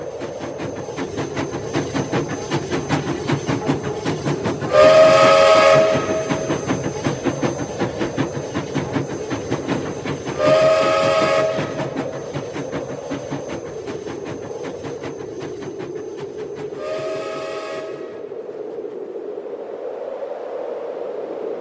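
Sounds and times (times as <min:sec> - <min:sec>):
steam locomotive chugging: 0:00.0 - 0:19.2
steam locomotive shrill whistle blasts: 0:04.7 - 0:06.6, 0:10.4 - 0:12.0, 0:16.8 - 0:18.2.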